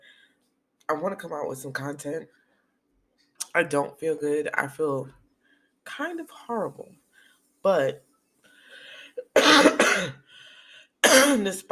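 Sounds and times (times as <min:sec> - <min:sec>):
speech: 0:00.9 - 0:02.4, 0:03.6 - 0:05.2, 0:05.8 - 0:07.0, 0:07.6 - 0:08.1, 0:11.0 - 0:11.7
unwell person coughing harshly: 0:09.2 - 0:10.2, 0:11.0 - 0:11.5.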